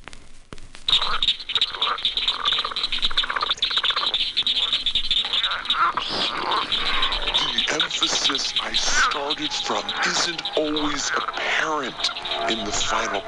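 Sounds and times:
night insects: 0:00.9 - 0:13.2
pig frog calling with grunting croaks: 0:00.9 - 0:13.2
speech: 0:09.4 - 0:13.2.

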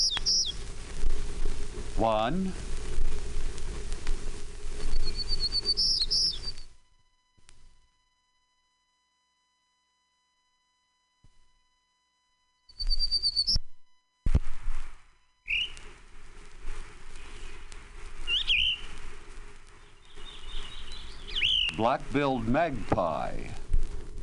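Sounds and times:
Townsend's warbler singing high buzzy phrases: 0:00.0 - 0:00.6, 0:04.8 - 0:06.6, 0:12.7 - 0:13.6, 0:18.3 - 0:18.9, 0:19.8 - 0:21.9
hiss: 0:00.0 - 0:07.9, 0:12.7 - 0:24.2
speech: 0:02.0 - 0:02.7, 0:21.8 - 0:23.6.

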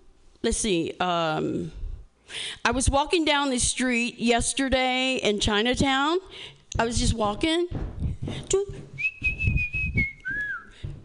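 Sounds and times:
speech: 0:00.4 - 0:09.2
person whistling: 0:09.0 - 0:10.8.

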